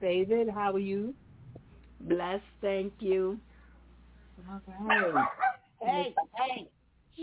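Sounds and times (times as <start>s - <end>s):
speech: 0.0s - 1.2s, 2.0s - 3.5s, 4.4s - 7.2s
low hum: 0.0s - 6.2s
dog barking and yelping at somebody in the hallway: 4.9s - 5.7s.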